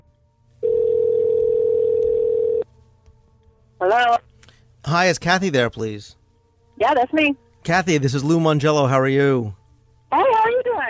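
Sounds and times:
telephone tone as a call is placed: 0.6 - 2.6
speech: 3.8 - 4.3, 4.9 - 6.2, 6.8 - 10.2.

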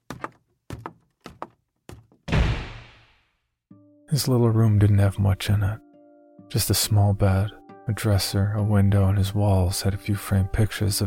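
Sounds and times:
heavy thuds like hurried steps up a small staircase: 0.0 - 2.3
bedroom door slammed shut violently: 2.2 - 3.1
speech: 4.1 - 5.8, 6.5 - 11.0.

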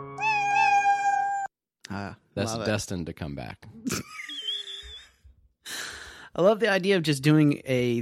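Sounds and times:
cat meowing in tuned steps like a melody: 0.2 - 1.5
speech: 2.5 - 4.1, 6.3 - 7.9.

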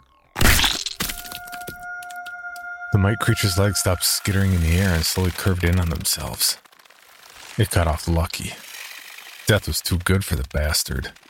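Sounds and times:
loud crunching crack of a creature being stomped and crushed: 0.4 - 1.9, 4.2 - 11.2
speech: 2.9 - 6.6, 7.6 - 8.6, 9.5 - 11.2
scattered faint crackles: 3.5 - 11.2.

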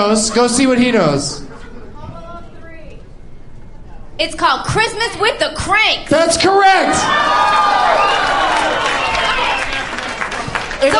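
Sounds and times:
speech: 0.0 - 1.5, 4.2 - 8.8, 10.8 - 10.9
laughter: 0.0 - 2.2
live audience applauding and cheering: 7.0 - 10.9.

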